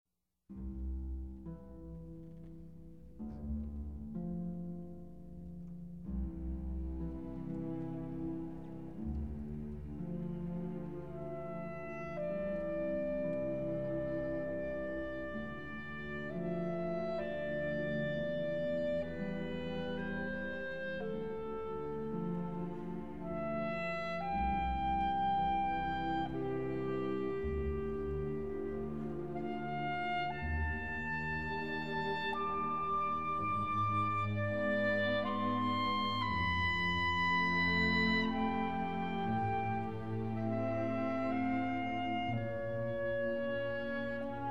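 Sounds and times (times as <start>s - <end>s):
clarinet: 0.5s - 44.4s
harp: 0.5s - 44.4s
piano: 0.5s - 44.4s
string orchestra: 0.5s - 44.4s.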